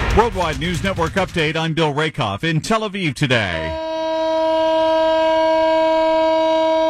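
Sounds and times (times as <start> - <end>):
speech: 0.1 - 3.7
memorial siren wailing: 3.7 - 6.8.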